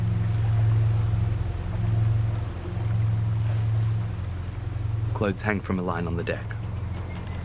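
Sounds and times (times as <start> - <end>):
boat engine droning on a river: 0.0 - 7.4
faint water wash from a boat on a river: 0.0 - 7.4
speech: 5.2 - 6.6.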